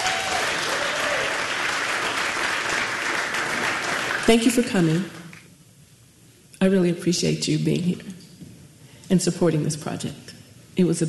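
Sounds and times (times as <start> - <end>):
audience applause: 0.0 - 4.3
speech: 4.3 - 5.2, 6.6 - 8.2, 9.1 - 11.0.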